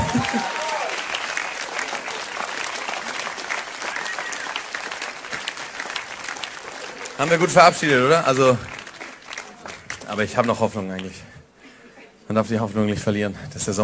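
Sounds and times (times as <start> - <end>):
person whooping or cheering: 0.0 - 1.0, 3.8 - 4.6
sustained audience applause: 0.0 - 11.2
speech: 7.2 - 8.7, 10.1 - 11.4, 12.3 - 13.8.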